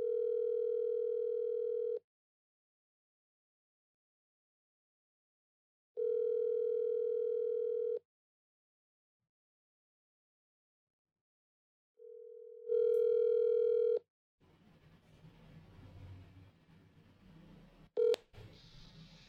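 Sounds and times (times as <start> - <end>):
telephone ringback tone: 0.0 - 2.0, 6.0 - 8.0, 12.0 - 14.0, 18.0 - 18.2.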